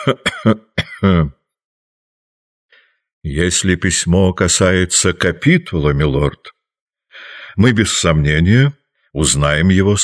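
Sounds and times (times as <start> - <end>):
old man giving dry coughs: 0.0 - 1.4
speech: 0.0 - 1.4, 3.2 - 6.6, 7.2 - 10.0.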